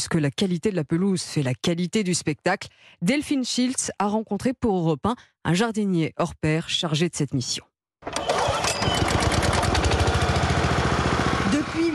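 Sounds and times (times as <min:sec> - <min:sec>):
speech: 0:00.0 - 0:08.3
lawn mowers cutting stadium grass with rattling engine drone: 0:08.0 - 0:11.9.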